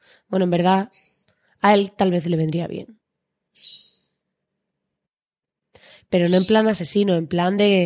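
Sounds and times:
speech: 0:00.3 - 0:03.0, 0:03.6 - 0:03.8, 0:06.1 - 0:07.8
pet bird chirping: 0:00.6 - 0:01.5, 0:03.5 - 0:04.3, 0:06.2 - 0:07.2.

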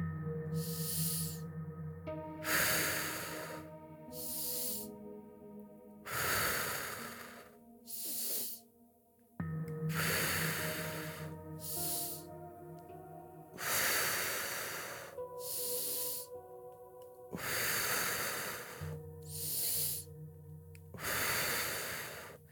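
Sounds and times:
soft sustained music tones: 0:00.0 - 0:22.5
slow deep breathing during a guided breathing round: 0:00.3 - 0:08.7, 0:09.7 - 0:22.5.

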